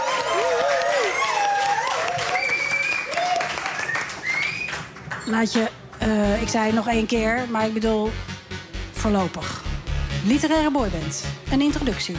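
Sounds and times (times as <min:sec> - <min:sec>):
audience shrill cheering and screaming voices: 0:00.0 - 0:04.6
audience clapping at a live literary stage show: 0:00.0 - 0:06.1
speech: 0:05.3 - 0:08.3, 0:09.0 - 0:09.6, 0:10.2 - 0:12.1.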